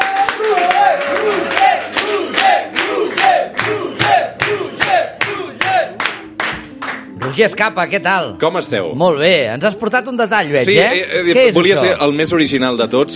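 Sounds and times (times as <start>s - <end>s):
large studio audience whooping and cheering: 0.0s - 4.0s
large studio audience clapping in rhythmic unison: 0.0s - 7.5s
speech: 7.4s - 13.1s.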